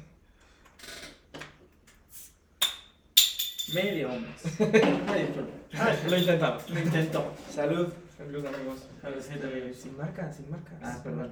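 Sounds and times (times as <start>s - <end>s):
metal clinking and scraping against a glass bottle being pried open: 2.6s - 4.1s, 5.9s - 6.9s
speech: 3.7s - 11.2s.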